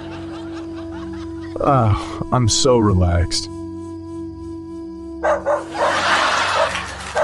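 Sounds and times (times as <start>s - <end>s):
laughter: 0.0s - 2.3s, 5.6s - 7.2s
steady low tonal hum: 0.0s - 7.1s
speech: 1.6s - 3.5s
neighbour's dog barking: 5.2s - 7.2s.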